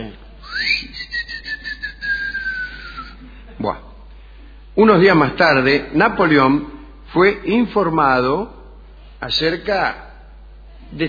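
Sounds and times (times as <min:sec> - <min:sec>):
loud human whistle as a call: 0:00.4 - 0:03.2
speech: 0:03.6 - 0:03.8, 0:04.8 - 0:08.6, 0:09.2 - 0:10.1.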